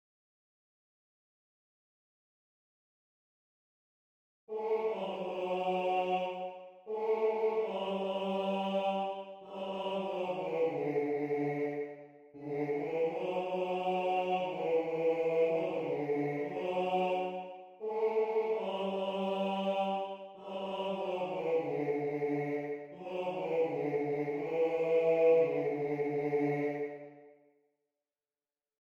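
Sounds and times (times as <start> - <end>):
TTBB male choir bass singing with other voices: 4.5 - 27.2.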